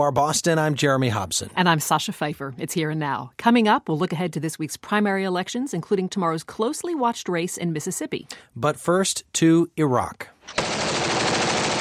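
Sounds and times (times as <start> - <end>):
speech: 0.0 - 10.8
rapid gunfire from soldiers shooting back at militants near Baqubah: 10.6 - 11.7.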